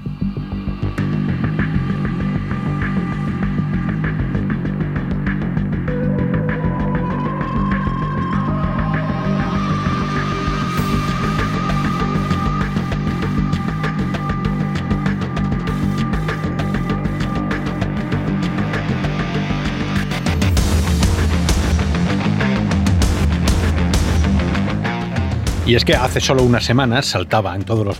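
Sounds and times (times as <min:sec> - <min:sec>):
instrumental music bed with rhythmic beat and heavy bass pulses: 0:00.0 - 0:26.8
speech: 0:25.7 - 0:27.9.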